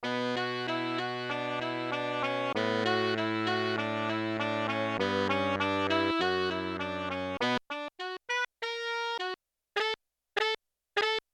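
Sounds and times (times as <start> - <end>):
alto and soprano tones on a Yamaha TX16W: 0.0 - 11.2.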